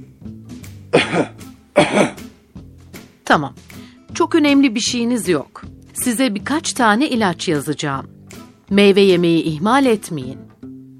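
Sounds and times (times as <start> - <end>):
person coughing on doctor's request: 0.9 - 2.3
speech: 1.1 - 2.1, 3.3 - 10.4.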